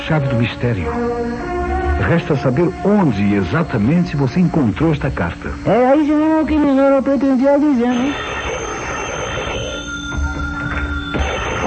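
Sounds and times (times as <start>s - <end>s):
noisy hum: 0.0s - 11.6s
speech: 0.1s - 8.3s
telephone ringing at a judicial police department: 4.1s - 11.6s.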